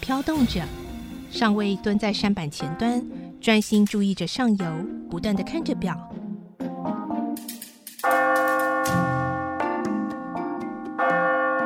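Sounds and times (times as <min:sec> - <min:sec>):
speech: 0:00.1 - 0:06.2
village church bell striking: 0:08.0 - 0:11.6.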